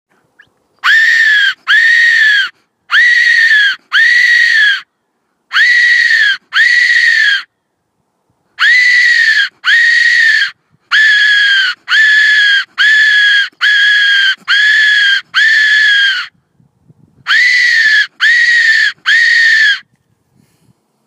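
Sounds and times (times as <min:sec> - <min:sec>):
fox call: 0:00.8 - 0:04.9, 0:05.5 - 0:07.5, 0:08.6 - 0:16.3, 0:17.3 - 0:19.9.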